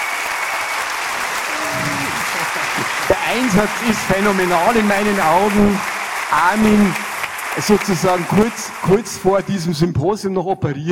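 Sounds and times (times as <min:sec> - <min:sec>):
audience applause: 0:00.0 - 0:09.9
laughter: 0:01.4 - 0:05.8
speech: 0:03.3 - 0:07.0, 0:07.6 - 0:10.8.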